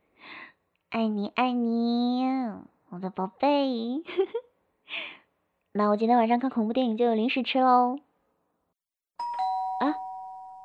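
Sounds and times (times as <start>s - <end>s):
speech: 1.0s - 5.1s, 5.8s - 8.1s
hotel room doorbell chiming: 9.2s - 10.6s.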